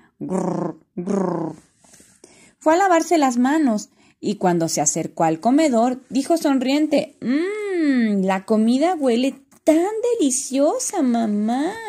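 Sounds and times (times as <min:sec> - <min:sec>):
speech: 0:00.2 - 0:01.6, 0:02.6 - 0:11.8
stomach growling: 0:00.2 - 0:01.7.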